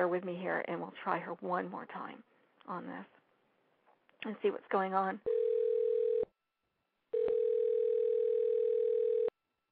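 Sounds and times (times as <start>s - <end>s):
speech: 0.0s - 3.2s, 4.2s - 5.4s
telephone tone while dialing out: 5.3s - 6.3s, 7.1s - 9.3s.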